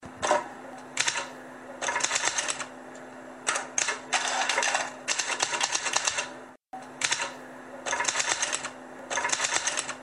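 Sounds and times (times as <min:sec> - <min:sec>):
typewriter typing: 0:01.0 - 0:02.7, 0:03.5 - 0:06.3, 0:07.0 - 0:07.3, 0:07.9 - 0:10.0.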